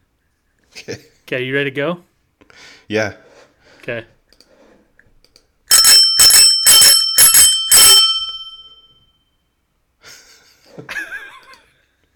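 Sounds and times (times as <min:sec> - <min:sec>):
speech: 0:00.9 - 0:02.1, 0:02.9 - 0:03.2, 0:03.9 - 0:04.2
bicycle bell ringing: 0:05.7 - 0:09.1.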